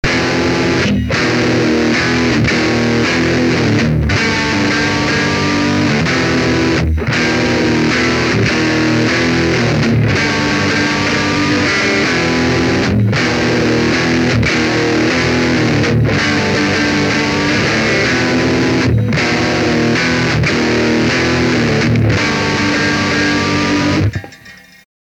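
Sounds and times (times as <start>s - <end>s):
saturated metal guitar: 0.0s - 24.8s.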